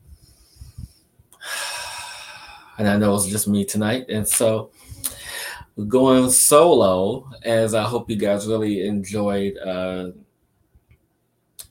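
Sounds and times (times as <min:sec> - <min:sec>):
deep breath drawn in: 0:00.0 - 0:02.8, 0:04.8 - 0:05.7
speech: 0:02.8 - 0:05.0, 0:05.8 - 0:10.2.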